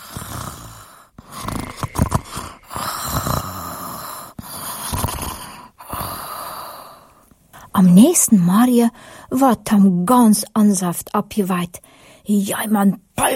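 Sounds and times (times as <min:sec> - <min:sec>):
rough snoring rasp: 0:00.0 - 0:07.1
calm steady breathing: 0:00.0 - 0:07.7, 0:08.9 - 0:09.3, 0:11.8 - 0:12.3
speech: 0:07.8 - 0:13.3.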